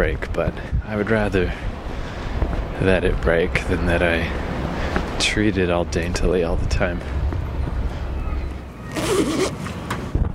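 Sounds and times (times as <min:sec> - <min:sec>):
speech: 0:00.0 - 0:01.8, 0:02.8 - 0:04.5, 0:05.2 - 0:07.2, 0:09.2 - 0:09.8
steady low rumble of outdoor noise: 0:00.0 - 0:10.3
coat zipper zipping up: 0:08.9 - 0:09.6.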